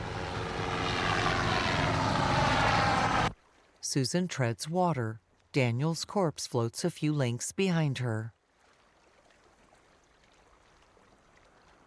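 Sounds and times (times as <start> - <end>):
helicopter flying past overhead: 0.0 - 3.4
speech: 3.9 - 8.4.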